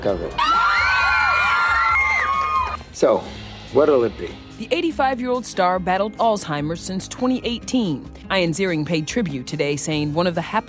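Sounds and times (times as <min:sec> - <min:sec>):
speech: 0:00.0 - 0:00.6, 0:03.0 - 0:10.6
crowd of children screaming and cheering: 0:00.4 - 0:02.8.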